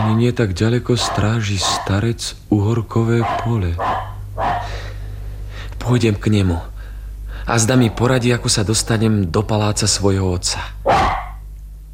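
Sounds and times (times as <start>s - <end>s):
dog barking: 0.0s - 0.2s, 1.0s - 2.0s, 3.2s - 4.8s, 10.8s - 11.4s
speech: 0.0s - 4.0s, 5.9s - 6.7s, 7.5s - 11.1s
low hum: 0.0s - 11.9s.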